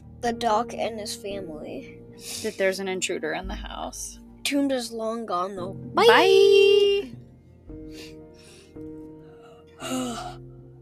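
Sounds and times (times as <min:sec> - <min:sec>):
speech: 0:00.2 - 0:08.2, 0:09.8 - 0:10.5
big drawn-out yawn with breathy inhales and voiced exhale: 0:09.8 - 0:10.4.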